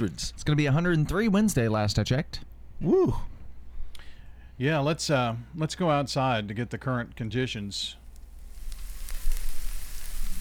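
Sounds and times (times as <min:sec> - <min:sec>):
speech: 0:00.0 - 0:03.4, 0:04.6 - 0:08.0
sizzling sound effect with faint crackles and pops: 0:08.0 - 0:10.4.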